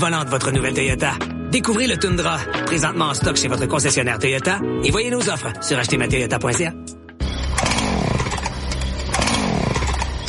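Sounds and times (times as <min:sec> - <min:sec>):
speech: 0:00.0 - 0:07.0
chainsaw engine being started and revving: 0:07.4 - 0:10.2.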